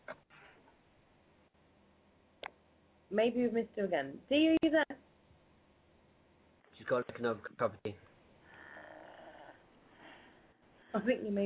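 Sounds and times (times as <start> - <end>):
speech: 3.1 - 4.8, 6.9 - 8.1, 10.9 - 11.4
person snoring heard faintly over a phone line: 8.5 - 9.6.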